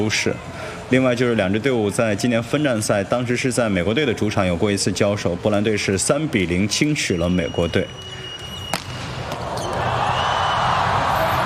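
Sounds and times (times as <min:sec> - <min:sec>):
speech: 0:00.0 - 0:08.2
volleyball serve hit for a direct ace: 0:08.4 - 0:10.0
crowd roaring at a volleyball final: 0:09.0 - 0:11.4.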